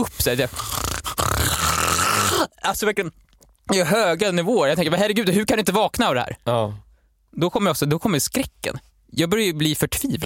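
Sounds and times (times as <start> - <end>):
speech: 0.0 - 0.7, 2.7 - 10.2
person imitating a man snoring loudly: 0.4 - 2.5.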